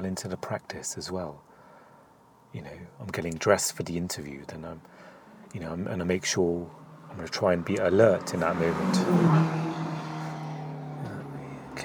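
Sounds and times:
speech: 0:00.0 - 0:01.5, 0:02.5 - 0:09.7
speeding car passing by with engine roaring: 0:06.4 - 0:11.8.

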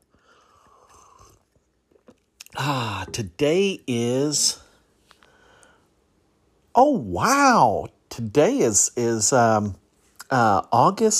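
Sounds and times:
person sipping a drink: 0:00.1 - 0:03.2
speech: 0:02.6 - 0:04.6, 0:06.8 - 0:11.1.

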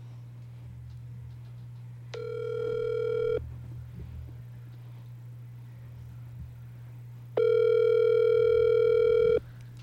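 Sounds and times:
ringback tone of an outgoing telephone call: 0:02.2 - 0:03.4, 0:07.4 - 0:09.4.

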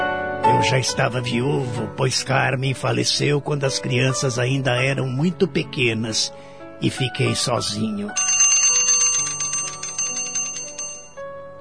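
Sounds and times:
speech: 0:00.6 - 0:08.7
handbell ringing for lunchtime: 0:08.2 - 0:11.2.

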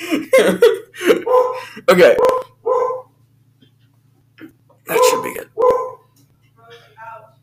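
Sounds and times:
speech: 0:00.0 - 0:00.8, 0:01.8 - 0:02.4
steady low hum: 0:00.0 - 0:07.4
dog barking: 0:01.2 - 0:01.6, 0:02.2 - 0:03.1, 0:04.9 - 0:06.1.

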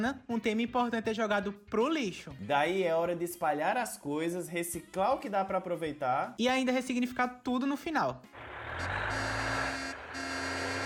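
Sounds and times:
speech: 0:00.0 - 0:09.4
garbage truck passing with heavy engine droning: 0:08.3 - 0:10.8.

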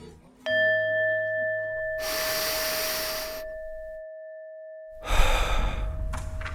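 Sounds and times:
bell-like chime: 0:00.4 - 0:05.5
several people breathing in and out in unison: 0:02.0 - 0:03.6, 0:05.0 - 0:06.4.

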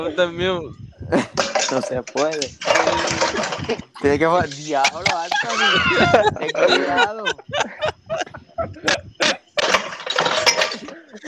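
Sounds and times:
speech: 0:00.0 - 0:07.9
laughter: 0:01.0 - 0:01.5, 0:02.8 - 0:09.6, 0:10.8 - 0:11.2
plates and dishes tumbling and smashing together: 0:01.3 - 0:07.3, 0:08.8 - 0:11.2
sharp clattering knocks: 0:01.4 - 0:06.0, 0:08.9 - 0:11.2.

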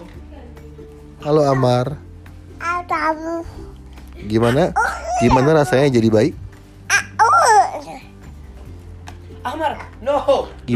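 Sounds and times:
speech: 0:01.2 - 0:02.1, 0:02.9 - 0:06.4, 0:09.4 - 0:10.7
baby babbling: 0:02.6 - 0:03.6, 0:04.8 - 0:05.8, 0:06.9 - 0:08.2.

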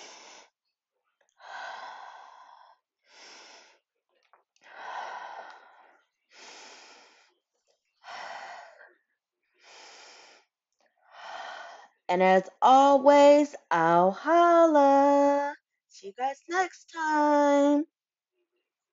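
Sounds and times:
deep slow breaths during a guided breathing exercise: 0:00.0 - 0:00.6, 0:01.4 - 0:03.9, 0:04.6 - 0:09.0, 0:09.6 - 0:12.1
speech: 0:12.1 - 0:17.9.

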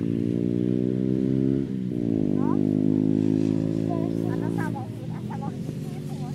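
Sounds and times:
motorcycle engines passing on a hill road: 0:00.0 - 0:06.3
faint voices: 0:03.8 - 0:06.3.

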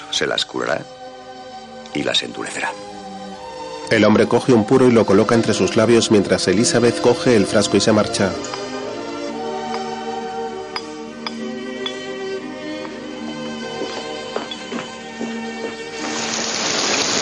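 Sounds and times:
speech: 0:00.2 - 0:01.0, 0:02.0 - 0:02.9, 0:03.9 - 0:08.6
rain pattering on a surface: 0:16.0 - 0:17.2.

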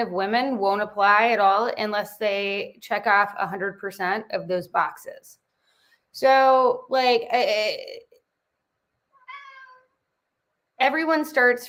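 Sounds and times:
speech: 0:00.0 - 0:05.4, 0:06.1 - 0:08.1, 0:10.8 - 0:11.6
cat meowing eager to get out a window: 0:09.2 - 0:10.0.

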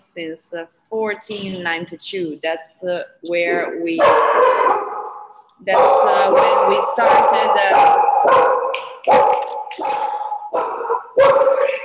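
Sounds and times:
speech: 0:00.2 - 0:04.8, 0:05.6 - 0:08.6
dog barking: 0:04.0 - 0:11.8.

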